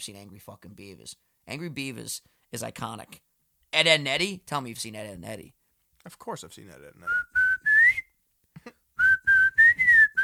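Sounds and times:
speech: 0.0 - 7.4
person whistling a short tune: 7.1 - 8.1, 9.0 - 10.2.

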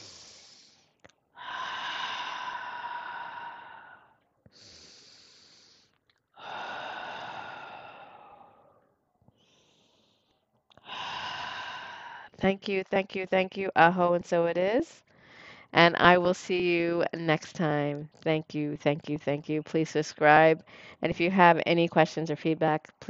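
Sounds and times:
deep breaths in a calm breathing exercise: 0.0 - 12.4, 15.1 - 15.8, 20.6 - 21.0
speech: 12.4 - 15.0, 15.7 - 23.0.

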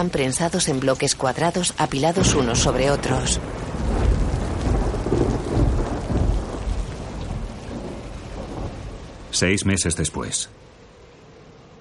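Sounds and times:
speech: 0.0 - 3.7, 9.4 - 10.7
heavy rain: 0.0 - 11.7
deep rumbling undertone: 1.4 - 9.4.

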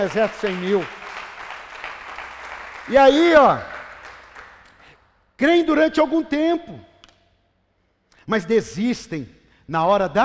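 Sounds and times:
speech: 0.0 - 1.0, 2.9 - 3.7, 5.4 - 6.9, 8.3 - 10.2
congregation applauding: 0.0 - 5.0.

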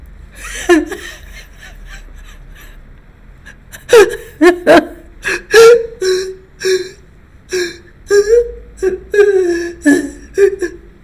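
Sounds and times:
laughter: 0.4 - 2.8, 3.5 - 5.8
voice imitating sobbing: 3.8 - 11.0.

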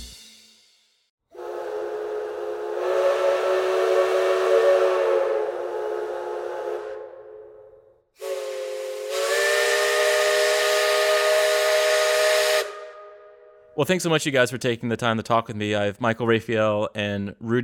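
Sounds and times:
steam train whistle blowing in North Carolina: 1.3 - 13.8
speech: 13.8 - 17.6.

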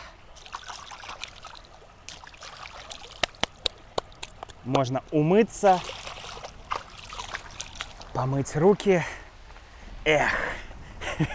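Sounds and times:
water splashes and drips: 0.0 - 8.6
small mountain stream babbling over stones: 0.0 - 9.5
speech: 4.7 - 6.0, 8.2 - 9.2, 10.0 - 10.6, 11.2 - 11.3.

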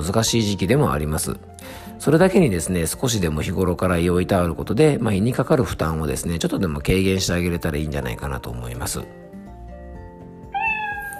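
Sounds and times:
speech: 0.0 - 9.3
cat meowing: 10.4 - 11.1.

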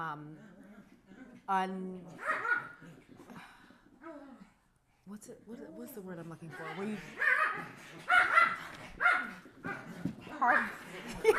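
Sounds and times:
speech: 0.0 - 0.6, 1.5 - 2.4, 5.1 - 11.3
several dogs barking and yipping while playing: 2.2 - 3.1, 6.5 - 11.3.

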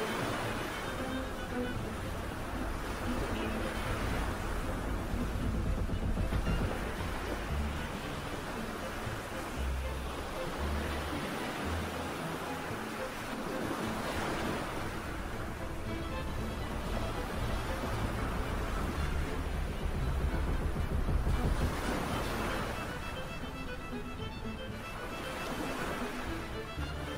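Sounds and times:
sea waves: 0.0 - 27.1
pirate ship hull creaking: 0.2 - 10.4, 13.8 - 27.0.

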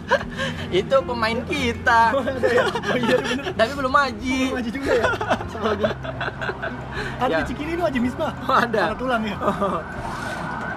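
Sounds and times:
laughter: 0.0 - 0.8, 1.6 - 10.0
speech: 0.2 - 10.1
ambulance siren passing outside: 9.4 - 10.7.

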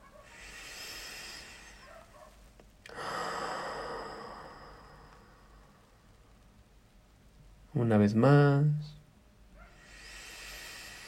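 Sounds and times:
slow deep breathing in through the nose and out through the mouth: 0.2 - 6.4, 9.7 - 11.0
speech: 7.8 - 9.0.

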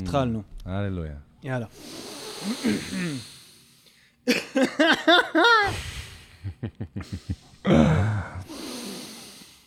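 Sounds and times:
speech: 0.1 - 3.3, 4.2 - 5.9, 6.6 - 8.3
several people inhaling and exhaling deeply together: 1.8 - 4.2, 5.6 - 9.6.

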